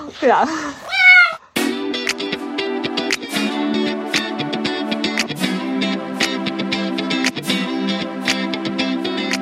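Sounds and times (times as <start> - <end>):
speech: 0.2 - 0.9
cat meowing: 0.8 - 1.5
buzzy music: 1.6 - 9.3.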